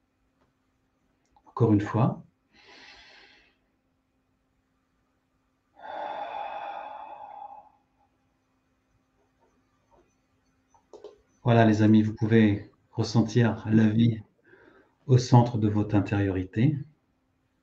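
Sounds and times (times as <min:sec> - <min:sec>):
speech: 0:01.6 - 0:02.3, 0:11.5 - 0:14.3, 0:15.1 - 0:16.9
group taking a deep breath and exhaling in a guided relaxation exercise: 0:02.5 - 0:03.7, 0:05.8 - 0:08.2, 0:14.4 - 0:15.0.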